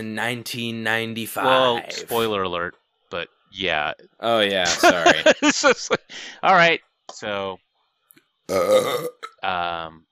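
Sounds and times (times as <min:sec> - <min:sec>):
speech: 0:00.0 - 0:07.6, 0:08.5 - 0:10.1
laughter: 0:01.4 - 0:02.2, 0:04.5 - 0:06.1
loud croaky burping into the microphone: 0:08.5 - 0:09.4.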